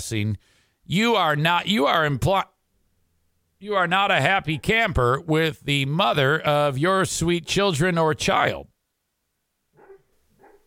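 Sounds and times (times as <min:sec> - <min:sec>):
speech: 0:00.0 - 0:02.5, 0:03.6 - 0:08.7
dog barking softly while dreaming: 0:09.8 - 0:10.6.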